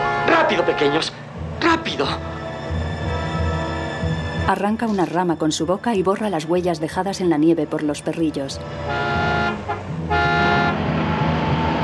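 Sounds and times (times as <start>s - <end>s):
car horn honking on a snowy roadside: 0.0s - 4.0s, 8.6s - 11.8s
car engine rumbling: 0.0s - 11.8s
speech: 0.5s - 2.4s, 4.5s - 9.2s.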